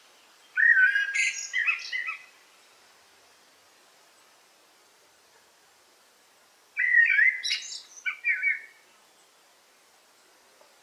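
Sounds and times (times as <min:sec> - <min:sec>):
faint hiss: 0:00.0 - 0:10.8
Eurasian blackbird song in forest: 0:00.2 - 0:02.3, 0:06.8 - 0:09.4.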